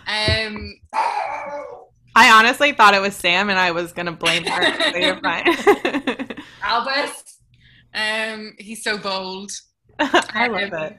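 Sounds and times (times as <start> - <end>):
dog barking loudly: 1.0 - 1.8
speech: 2.4 - 7.3, 7.9 - 10.9
laughter: 4.3 - 6.4.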